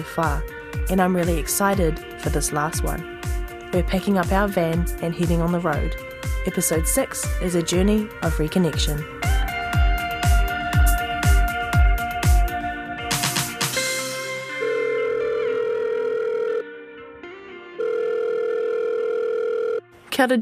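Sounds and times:
speech: 0.0 - 3.1, 3.7 - 9.2, 20.2 - 20.4
punchy rhythmic music: 0.0 - 14.5
phone ringback tone: 14.5 - 16.6, 17.8 - 19.9.

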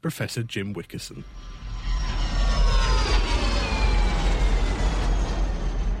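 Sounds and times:
speech: 0.0 - 1.6
Rolls-Royce jet engine roar at heritage museum in Derby: 1.2 - 5.9.

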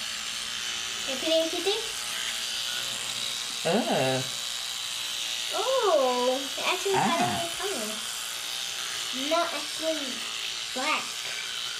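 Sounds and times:
electric toothbrush buzzing while brushing teeth: 0.0 - 11.7
speech: 1.1 - 2.0, 3.6 - 4.4, 5.5 - 8.1, 9.1 - 11.1.

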